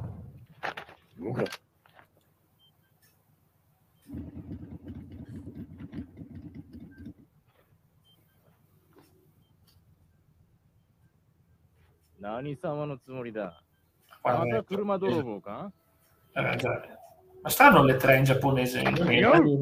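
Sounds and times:
speech: 0:01.2 - 0:01.7, 0:12.2 - 0:13.6, 0:14.2 - 0:15.8, 0:16.4 - 0:19.6
loud clattering bursts: 0:04.1 - 0:07.2
video game motorcycle engine idling: 0:04.1 - 0:07.3.

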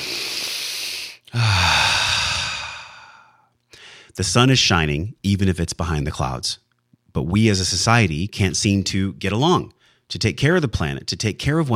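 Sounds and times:
deep breath in and out with a low voiced sigh: 0:00.0 - 0:04.2
speech: 0:04.2 - 0:11.7.

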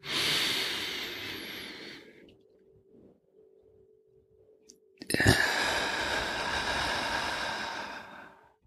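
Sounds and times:
slow deep breathing with long airy exhales and sharp inhales: 0:00.0 - 0:02.4, 0:05.1 - 0:08.6.

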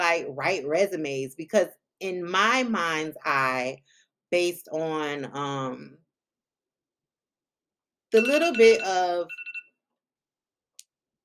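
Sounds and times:
speech: 0:00.2 - 0:06.0, 0:08.1 - 0:09.5
phone alarm beeping with bright electronic pulses: 0:08.2 - 0:09.8.

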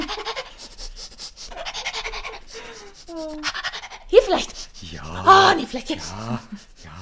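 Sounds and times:
dog panting while searching on command: 0:00.0 - 0:07.0
speech: 0:05.8 - 0:06.7.

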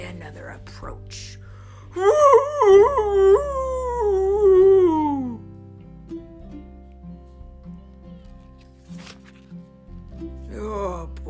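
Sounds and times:
speech: 0:00.1 - 0:03.3
dog howling: 0:02.0 - 0:05.4.

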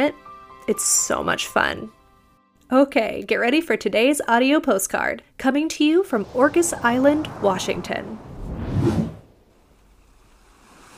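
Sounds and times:
speech: 0:00.0 - 0:02.0, 0:02.7 - 0:09.0
small wave of an inland sea washing in at Orcas Island, Washington: 0:06.1 - 0:10.9.

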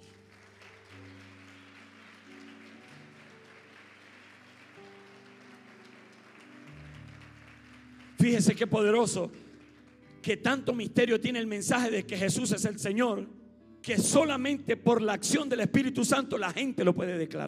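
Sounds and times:
crowd applauding: 0:00.0 - 0:10.8
speech: 0:08.2 - 0:09.5, 0:10.2 - 0:17.4.

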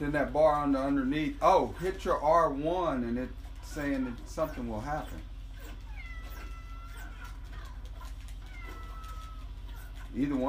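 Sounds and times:
speech: 0:00.0 - 0:05.3, 0:10.1 - 0:10.4
steady low hum: 0:00.0 - 0:10.4
cat meowing: 0:05.6 - 0:10.1.

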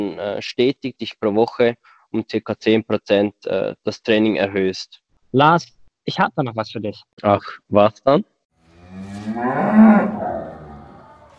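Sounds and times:
speech: 0:00.0 - 0:08.3, 0:08.9 - 0:10.2
cow mooing: 0:08.6 - 0:11.3.

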